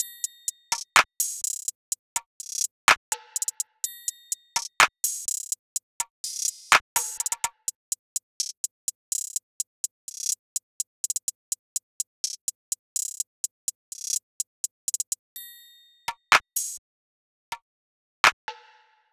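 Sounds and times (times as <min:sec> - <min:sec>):
hi-hat loop at 125 BPM: 0:00.0 - 0:03.6, 0:04.5 - 0:15.2, 0:16.3 - 0:16.8.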